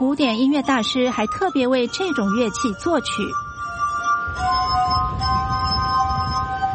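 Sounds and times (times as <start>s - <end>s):
glass harp music played on rubbed glasses: 0.0s - 6.7s
speech: 0.1s - 3.5s.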